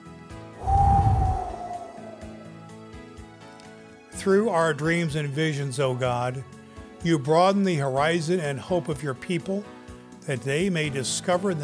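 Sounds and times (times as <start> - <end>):
deep breath taken before a prayer: 0.6 - 2.7
speech: 4.2 - 11.6.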